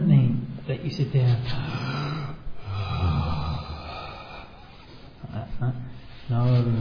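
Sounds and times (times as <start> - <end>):
speech: 0.8 - 2.0, 5.6 - 6.8
exaggerated forced long breaths in and out demonstrating meditation breathing: 1.5 - 6.3.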